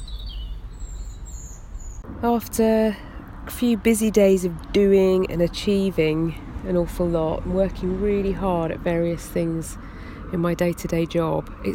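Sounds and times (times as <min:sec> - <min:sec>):
birds singing outdoors on a farm on a sunny afternoon: 0:00.0 - 0:02.0
steady low rumble of wind: 0:00.0 - 0:11.7
speech: 0:02.2 - 0:11.7.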